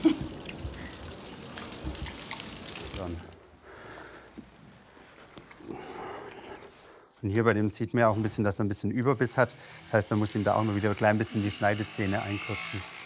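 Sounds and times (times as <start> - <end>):
water trickling and dripping: 0.0 - 3.6
speech: 3.0 - 3.3, 7.2 - 13.0.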